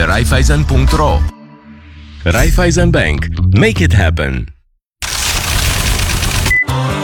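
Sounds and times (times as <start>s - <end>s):
speech: 0.1s - 1.4s, 2.2s - 4.5s
ATM cash deposit mechanical whirr: 5.0s - 6.6s
rustle of banknotes being processed in an ATM: 5.0s - 6.6s.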